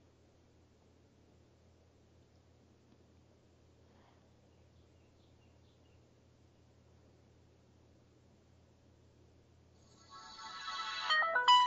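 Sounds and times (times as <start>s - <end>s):
smartphone startup jingle on power-up: 10.1s - 11.6s.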